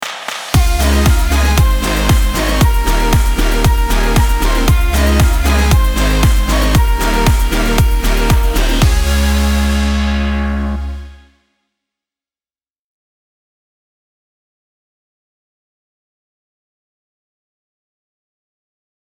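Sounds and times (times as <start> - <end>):
folk dance music in C sharp: 0.0 - 11.2.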